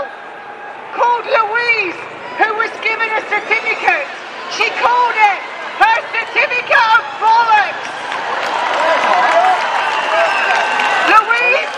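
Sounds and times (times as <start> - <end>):
crowd cheering at outdoor protest: 0.0 - 11.7
speech: 1.2 - 8.0
large crowd applauding at outdoor protest: 5.6 - 11.7.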